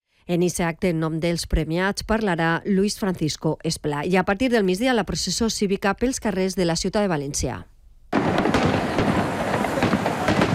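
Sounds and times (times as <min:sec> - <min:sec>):
speech: 0:00.3 - 0:07.7
fireworks display exploding: 0:08.1 - 0:10.5.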